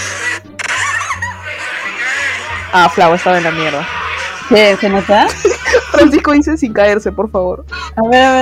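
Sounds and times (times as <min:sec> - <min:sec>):
screams played back through a small speaker: 0:00.0 - 0:05.8
laughter: 0:00.0 - 0:06.5
speech: 0:02.8 - 0:08.4.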